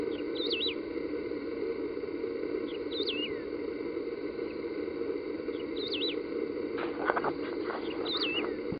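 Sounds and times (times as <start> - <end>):
constant low drone: 0.0 - 8.7
Wedge-tailed grass finch short high wavering call: 0.4 - 0.8, 2.7 - 3.5, 5.5 - 6.2, 6.8 - 8.6.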